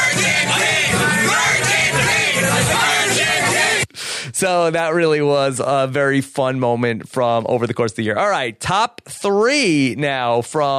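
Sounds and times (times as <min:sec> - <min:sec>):
dense party crowd cheering and yelling: 0:00.0 - 0:03.8
speech: 0:04.4 - 0:10.7.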